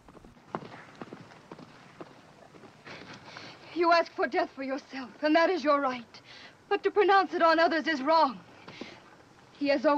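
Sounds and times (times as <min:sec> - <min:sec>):
horse with rider galloping hoofbeats: 0:00.0 - 0:03.5
speech: 0:03.8 - 0:08.5, 0:09.6 - 0:09.9.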